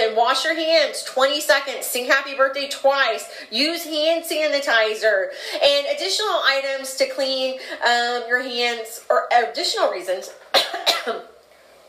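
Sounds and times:
speech: 0.2s - 11.3s
person coughing: 10.5s - 11.3s.

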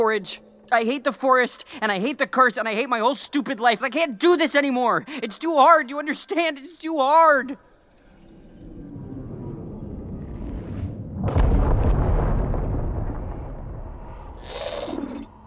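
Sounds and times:
speech: 0.0s - 7.7s
low rumbling buildup: 8.4s - 15.4s
heavy explosion with roaring rumble: 9.2s - 15.3s.

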